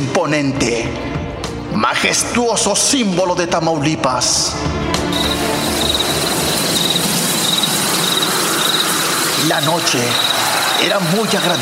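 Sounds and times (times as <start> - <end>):
speech: 0.2 - 1.1, 1.7 - 6.0, 9.4 - 11.6
crickets chirping on a cool cloudy night in Tamaulipas Mexico: 5.1 - 11.6
wind blowing through tree branches: 5.2 - 11.6.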